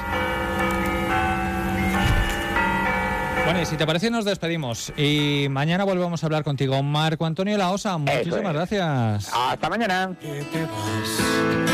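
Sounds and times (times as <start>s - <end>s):
church bells ringing in an overlapping peal: 0.0s - 7.0s
speech: 3.5s - 11.7s.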